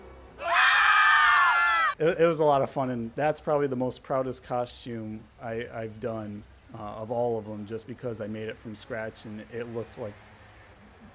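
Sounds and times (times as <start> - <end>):
shrill scream: 0.4 - 2.0
speech: 2.0 - 10.3.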